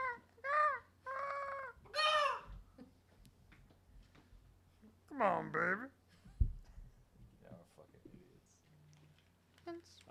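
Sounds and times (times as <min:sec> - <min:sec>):
person imitating a pterodactyl with shrill screeches: 0:00.0 - 0:02.5
speech: 0:05.2 - 0:05.9.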